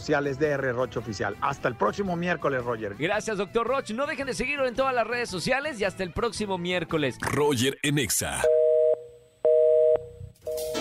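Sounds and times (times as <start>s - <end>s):
speech: 0.0s - 8.6s
telephone line tone beeps during call transfer to voicemail: 8.4s - 10.7s.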